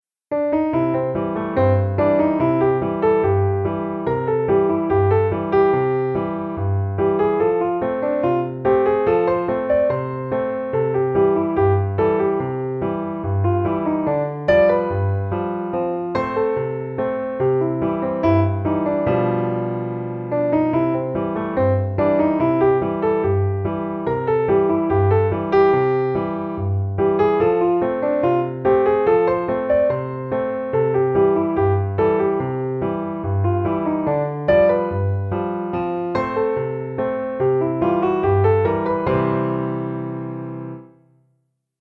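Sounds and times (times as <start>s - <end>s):
solo ragtime piano: 0.3s - 41.1s.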